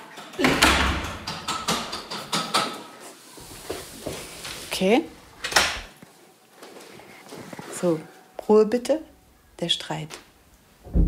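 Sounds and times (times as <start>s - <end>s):
door latch and frame rattling clicks and knocks: 0.2s - 2.8s
door thudding shut: 0.4s - 1.8s, 10.9s - 11.0s
speech: 4.8s - 5.2s, 7.8s - 10.2s.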